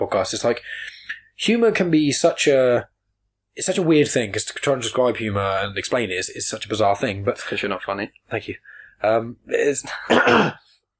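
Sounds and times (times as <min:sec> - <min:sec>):
speech: 0:00.0 - 0:02.9, 0:03.6 - 0:10.7
smoker clearing the throat: 0:10.0 - 0:10.7.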